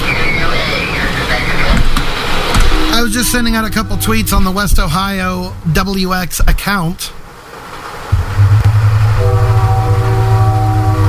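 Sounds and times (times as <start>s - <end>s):
approaching train rumbling: 0.0s - 11.0s
train horn long multi-tone blast: 2.6s - 4.7s, 8.9s - 11.0s
speech: 3.0s - 7.2s.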